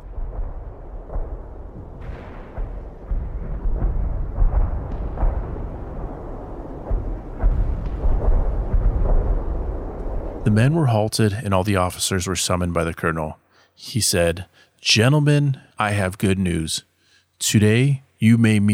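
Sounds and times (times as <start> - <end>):
distant artillery fire rumbling: 0.0 - 10.8
speech: 10.5 - 18.7.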